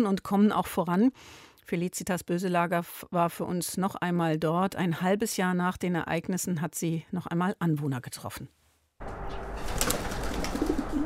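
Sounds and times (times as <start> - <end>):
speech: 0.0 - 8.6
pigeons cooing in a garden: 10.1 - 11.0.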